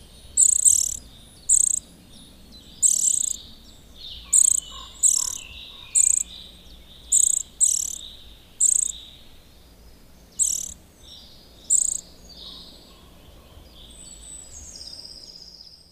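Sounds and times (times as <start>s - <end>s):
faint steady background hiss: 0.0s - 15.9s
Eurasian nuthatch calls: 0.3s - 1.9s, 2.7s - 9.1s, 10.2s - 10.8s, 11.7s - 12.1s.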